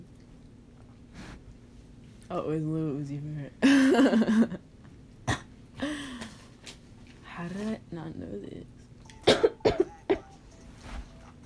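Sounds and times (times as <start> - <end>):
speech: 2.3 - 4.7, 7.4 - 8.8
harsh coughs of a person coughing up blood: 9.2 - 10.3.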